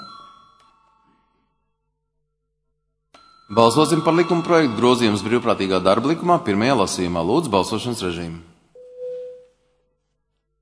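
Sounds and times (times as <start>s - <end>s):
bell rung to call a vote in parliament: 0.0s - 1.0s, 3.2s - 7.0s
speech: 3.5s - 8.5s.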